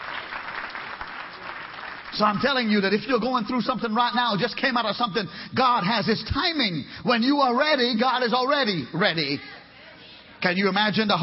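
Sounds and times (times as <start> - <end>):
audience clapping hands: 0.0 - 3.1
speech: 2.2 - 9.5, 10.4 - 11.2.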